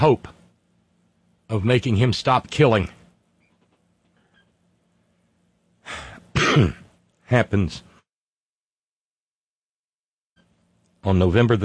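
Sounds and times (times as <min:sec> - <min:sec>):
speech: 0:00.0 - 0:00.3, 0:01.5 - 0:03.0, 0:05.9 - 0:07.9, 0:11.0 - 0:11.6
person who recently quit smoking coughing: 0:05.9 - 0:06.9.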